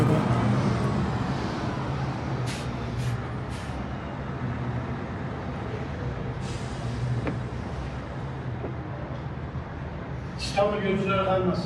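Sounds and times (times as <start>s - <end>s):
white bus pulling up at a bus terminal platform, heavy engine rumble: 0.0s - 11.6s
bus air brakes hissing: 2.4s - 4.1s, 6.3s - 8.2s
speech: 10.6s - 11.6s.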